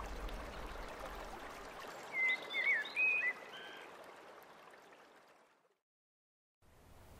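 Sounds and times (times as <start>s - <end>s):
river water rushing: 0.0s - 5.4s.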